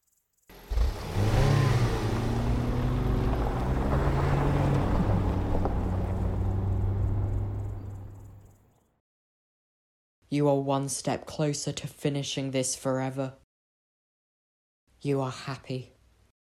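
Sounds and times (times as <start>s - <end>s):
car engine starting and running as the car reverses out of a driveway: 0.5s - 8.5s
speech: 10.4s - 13.4s, 15.0s - 16.0s.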